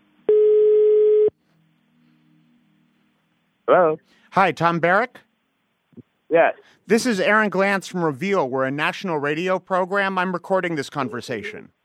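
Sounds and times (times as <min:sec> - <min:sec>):
phone ringback tone on an outgoing call to a cell phone: 0:00.3 - 0:01.3
speech: 0:03.7 - 0:05.3, 0:06.3 - 0:11.8.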